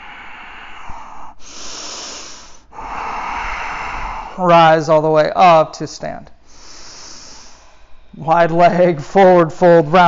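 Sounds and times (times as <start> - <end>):
slow deep breathing during a yoga session: 0.0 - 4.6, 6.4 - 8.2
speech: 4.4 - 6.4, 8.2 - 10.0.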